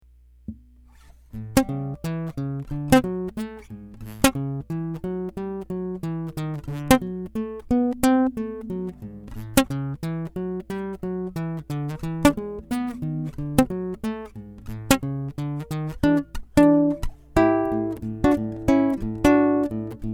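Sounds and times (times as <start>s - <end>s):
blues played on bass guitar: 1.3s - 20.1s.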